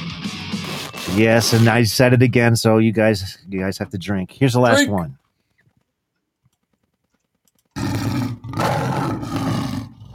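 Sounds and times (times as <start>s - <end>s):
speech: 1.1s - 5.2s
lion roaring: 7.8s - 10.1s.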